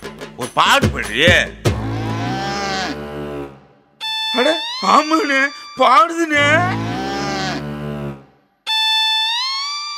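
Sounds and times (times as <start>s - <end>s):
speech: 0.4s - 1.6s, 4.4s - 6.8s
cow mooing: 1.8s - 3.7s, 6.4s - 8.5s
brief shrill electronic-sounding tone: 4.0s - 8.0s, 8.7s - 9.9s.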